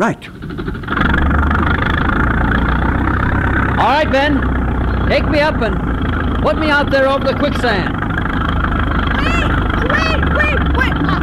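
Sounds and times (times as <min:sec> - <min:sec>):
speech: 0:00.0 - 0:01.1, 0:03.8 - 0:08.0
engine idling: 0:00.0 - 0:11.2.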